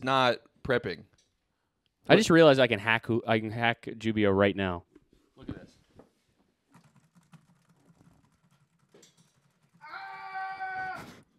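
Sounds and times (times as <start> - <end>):
speech: 0.0 - 1.1, 2.0 - 5.7
computer keyboard keys clattering: 6.8 - 9.8
loud shrill drawn-out cry: 9.8 - 11.3.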